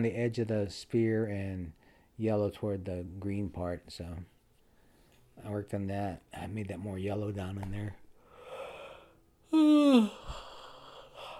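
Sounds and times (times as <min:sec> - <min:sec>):
speech: 0:00.0 - 0:04.3, 0:05.4 - 0:08.0, 0:09.5 - 0:10.5
person yawning: 0:08.4 - 0:11.3.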